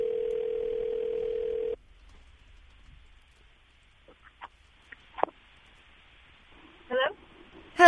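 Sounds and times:
outgoing phone call ringing tone: 0.0s - 1.8s
quiet phone line noise: 1.8s - 7.8s
person speaking: 6.9s - 7.8s.

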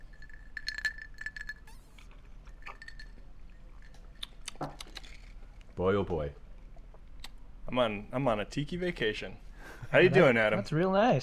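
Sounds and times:
glasses clinking in a toast: 0.0s - 1.9s, 2.6s - 4.1s
speech: 5.8s - 6.4s, 7.7s - 11.2s.

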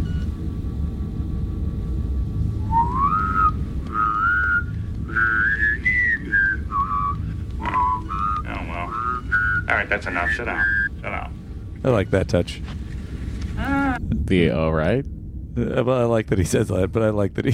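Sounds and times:
steady low rumble: 0.0s - 17.5s
person whistling a short wandering tune: 2.6s - 10.9s
speech: 9.8s - 12.8s, 14.3s - 17.5s.

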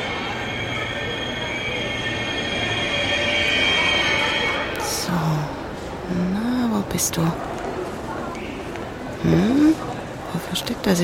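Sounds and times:
high metallic train wheel squeal: 0.0s - 4.9s
ICE high-speed train from Basel rolling into a station: 0.0s - 11.0s
speech: 7.0s - 7.5s, 9.2s - 9.8s, 10.6s - 11.0s.

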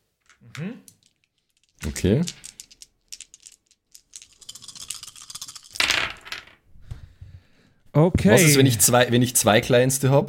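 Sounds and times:
six-sided dice rattling and clattering onto a hard surface: 0.2s - 6.6s
speech: 0.4s - 0.9s, 1.8s - 2.5s, 8.0s - 10.2s.

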